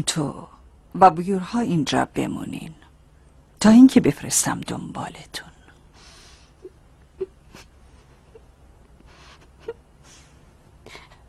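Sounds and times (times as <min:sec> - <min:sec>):
speech: 0:00.0 - 0:02.8, 0:03.6 - 0:05.5
person whimpering and crying with whiny sobs: 0:06.5 - 0:11.2.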